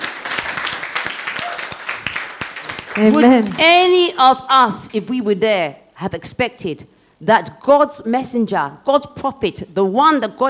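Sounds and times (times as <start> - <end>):
crowd clapping in a room: 0.0 - 4.0
speech: 3.0 - 10.4.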